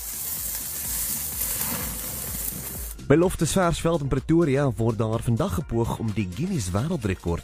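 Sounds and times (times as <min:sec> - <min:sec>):
meat sizzling on a South African braai grill: 0:00.0 - 0:03.0
speech: 0:03.1 - 0:07.4.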